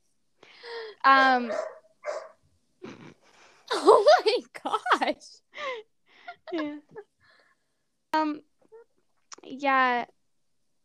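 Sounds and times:
speech: 1.0s - 1.7s, 3.8s - 5.9s, 6.5s - 7.1s, 8.1s - 8.5s, 9.4s - 10.2s
dog barking in its crate: 1.4s - 2.4s.

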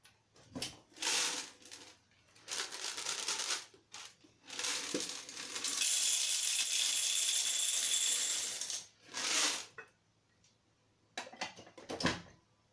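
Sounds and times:
coffee beans poured and rattling into a machine: 0.9s - 9.8s.

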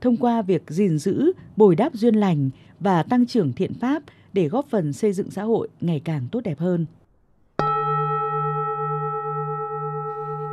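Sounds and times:
speech: 0.0s - 7.0s
single deep temple bell struck and ringing: 7.6s - 10.5s.

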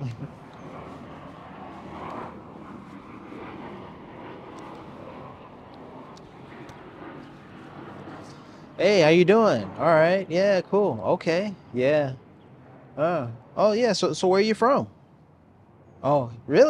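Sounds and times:
airplane rumbling overhead: 0.0s - 16.6s
outdoor noise: 0.0s - 16.6s
speech: 8.8s - 12.2s, 13.0s - 15.0s, 16.0s - 16.6s.

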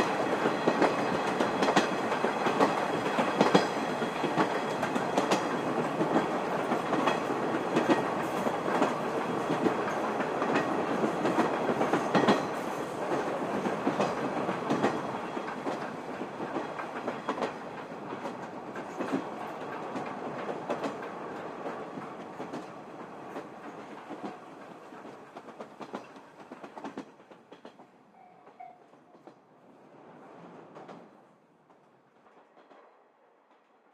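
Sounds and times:
steam train rolling across a river bridge: 0.0s - 33.9s.

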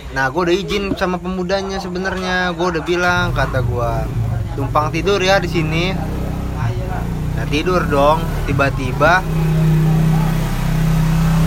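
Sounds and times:
speech: 0.1s - 6.2s, 7.4s - 9.6s
bus engine drone passing by outside: 3.0s - 11.4s.

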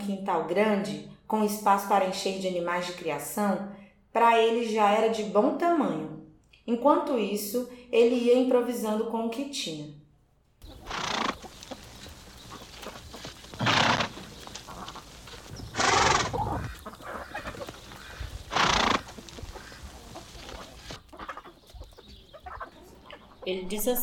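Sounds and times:
speech: 0.0s - 10.0s, 23.5s - 24.0s
horse hooves clip-clopping: 10.6s - 23.3s
faint barnyard fowl clucking: 10.6s - 23.5s
horse whinnying: 10.7s - 11.5s, 13.3s - 14.3s, 15.5s - 21.0s.

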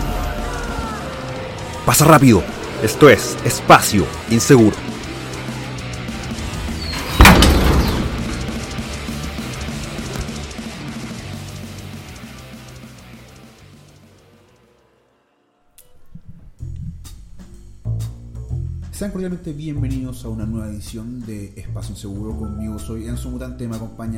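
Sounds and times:
speech: 1.9s - 4.9s, 19.1s - 24.1s
door slamming shut with a reverberant bang: 6.9s - 8.3s.

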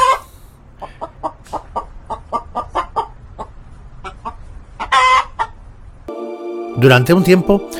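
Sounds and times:
hen clucking: 0.0s - 5.6s
speech: 6.8s - 7.7s.

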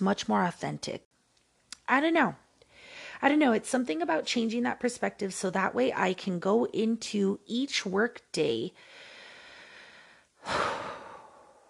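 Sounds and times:
speech: 0.0s - 1.1s, 1.9s - 2.4s, 3.2s - 9.1s
person breathing slowly: 8.8s - 11.6s.

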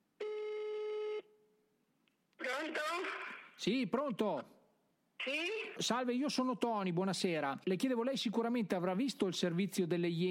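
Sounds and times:
telephone line tone while placing a call: 0.2s - 1.2s
speech: 2.6s - 4.6s, 5.2s - 10.2s.

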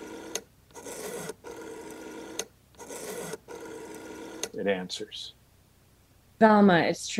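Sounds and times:
rotary telephone being dialed: 0.0s - 4.6s
speech: 4.6s - 5.4s, 6.4s - 7.1s.

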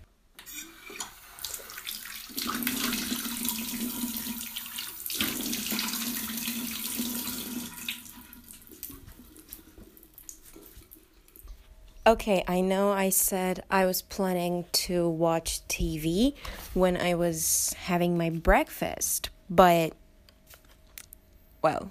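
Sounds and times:
tap water running into a sink while someone washes their face: 0.4s - 10.6s
speech: 12.1s - 20.0s, 21.6s - 21.8s.

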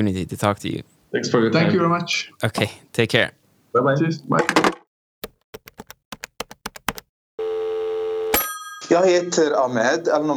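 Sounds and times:
speech: 0.0s - 4.7s, 8.9s - 10.3s
steady unbroken telephone line tone: 7.4s - 10.3s.

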